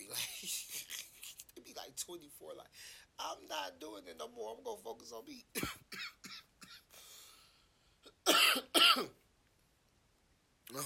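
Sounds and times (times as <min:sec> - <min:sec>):
speech: 0:02.0 - 0:05.8
person coughing: 0:05.6 - 0:06.9, 0:08.2 - 0:09.2.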